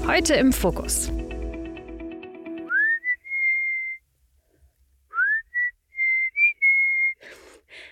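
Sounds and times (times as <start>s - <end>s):
speech: 0.1s - 1.2s
person whistling a tune: 2.7s - 4.0s, 5.1s - 7.3s.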